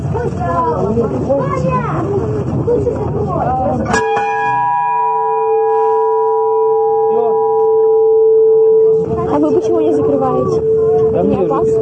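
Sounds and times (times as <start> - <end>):
lively crowd chatter: 0.0 - 11.8
speech: 0.4 - 4.0
ship's bell ringing: 3.9 - 11.8.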